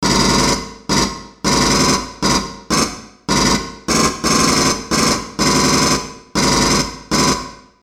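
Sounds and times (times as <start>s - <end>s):
pulse rifle firing: 0.1s - 7.6s.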